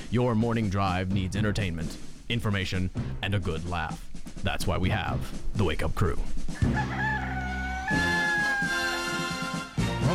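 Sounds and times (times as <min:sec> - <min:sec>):
speech: 0:00.1 - 0:07.3, 0:07.9 - 0:08.2
rooster crowing loudly: 0:06.5 - 0:09.5.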